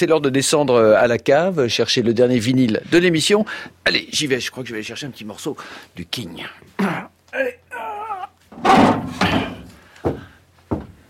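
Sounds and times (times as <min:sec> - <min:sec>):
speech: 0:00.0 - 0:07.6
wooden chalet door creaking open: 0:08.5 - 0:09.8.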